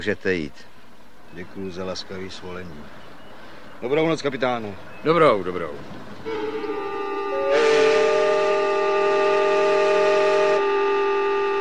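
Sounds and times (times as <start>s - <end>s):
speech: 0.0s - 0.7s, 1.3s - 3.1s, 3.8s - 6.4s
steamboat horn blast as steamer arrives in fog near a lock: 6.2s - 11.5s.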